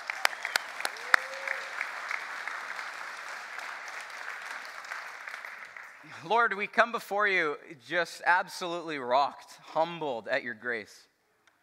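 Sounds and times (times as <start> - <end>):
church audience applauding after a sermon: 0.0 - 6.2
speech: 6.2 - 11.1.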